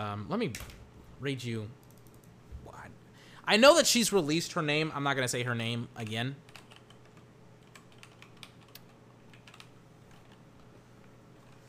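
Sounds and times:
speech: 0:00.0 - 0:01.8, 0:03.5 - 0:06.6
typing on a computer keyboard: 0:01.8 - 0:02.3, 0:06.5 - 0:10.5.

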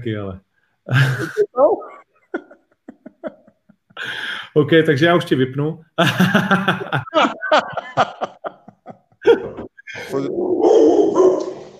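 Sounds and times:
speech: 0:00.0 - 0:02.5, 0:04.0 - 0:08.5
laughter: 0:00.9 - 0:04.2, 0:06.0 - 0:10.1
dog barking in short sharp yaps: 0:10.6 - 0:11.7.

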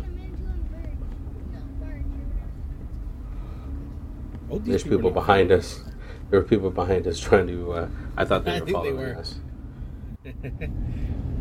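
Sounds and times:
people chatting indistinctly: 0:00.0 - 0:02.8, 0:04.5 - 0:09.4
deep engine rumble of a boat pulling away from a dock: 0:00.0 - 0:11.4
speech: 0:04.5 - 0:09.4, 0:10.2 - 0:11.2
laughter: 0:10.2 - 0:10.8.

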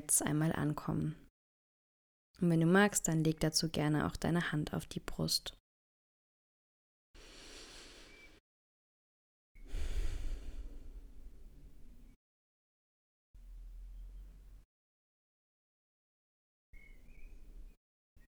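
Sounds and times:
speech: 0:00.1 - 0:01.2, 0:02.4 - 0:05.6
person consciously taking deep breaths: 0:07.2 - 0:08.4, 0:09.6 - 0:11.4.

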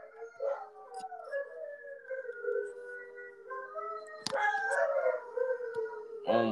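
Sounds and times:
dogs howling: 0:00.0 - 0:06.5
dog barking or yelping: 0:00.4 - 0:00.8
speech: 0:06.3 - 0:06.5.

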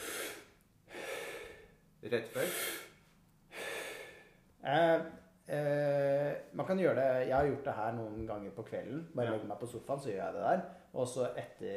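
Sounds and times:
rapid forceful hyperventilation breathing: 0:00.0 - 0:01.8, 0:02.4 - 0:04.4
speech: 0:02.0 - 0:02.9, 0:04.6 - 0:11.7.

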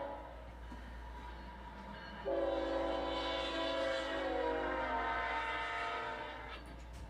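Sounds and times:
locomotive horn blowing for grade crossing: 0:00.0 - 0:00.4, 0:02.2 - 0:06.8.

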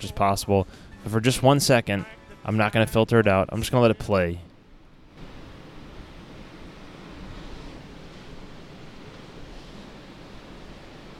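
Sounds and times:
speech: 0:00.0 - 0:04.5
Gulf of Mexico waves lapping gently against sand: 0:05.2 - 0:11.1.

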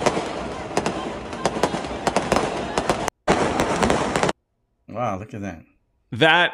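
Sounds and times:
fireworks exploding at a game: 0:00.0 - 0:04.4
speech: 0:05.1 - 0:06.5.

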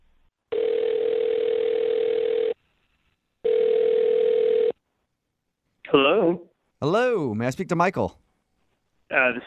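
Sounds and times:
long steady phone ringback tones: 0:00.5 - 0:02.6, 0:03.4 - 0:04.8
speech: 0:06.8 - 0:08.2, 0:09.2 - 0:09.4.

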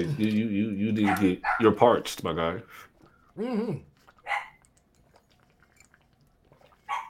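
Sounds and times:
speech: 0:00.0 - 0:04.4
small dog yipping and barking: 0:04.2 - 0:04.6, 0:06.8 - 0:07.0.

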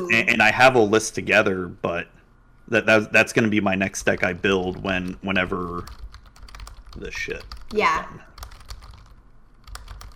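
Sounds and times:
speech: 0:00.0 - 0:06.0, 0:07.0 - 0:08.3
typing on a computer keyboard in a chat: 0:05.7 - 0:07.8, 0:08.4 - 0:10.1.

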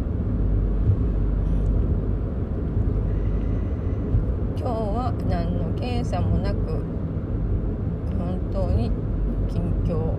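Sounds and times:
car driving along a scenic riverside road, heard from inside: 0:00.0 - 0:10.1
speech: 0:05.1 - 0:06.9, 0:08.5 - 0:10.1.

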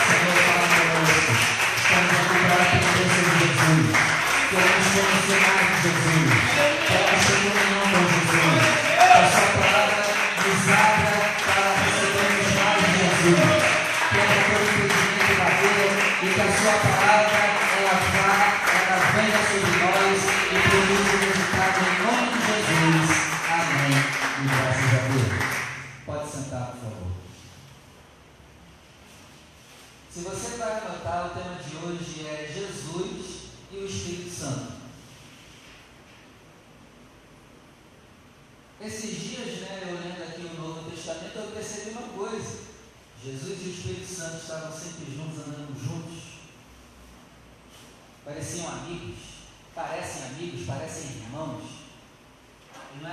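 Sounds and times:
large church audience clapping: 0:00.0 - 0:25.9
speech: 0:30.2 - 0:34.7, 0:38.8 - 0:42.6, 0:43.2 - 0:46.2, 0:48.2 - 0:51.8, 0:52.9 - 0:53.1.

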